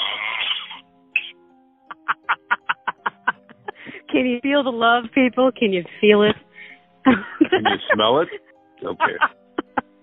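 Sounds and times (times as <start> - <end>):
harsh raspy hacking coughs: 0.1 - 1.5
laughter: 1.9 - 4.0, 7.1 - 9.9
speech: 4.1 - 6.4, 7.1 - 9.4.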